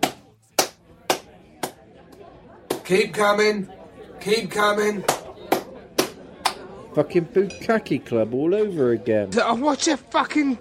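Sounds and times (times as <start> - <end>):
sharp hand claps to guide someone: 0.0 - 1.8, 5.0 - 6.6
speech: 2.9 - 5.2, 7.0 - 10.6.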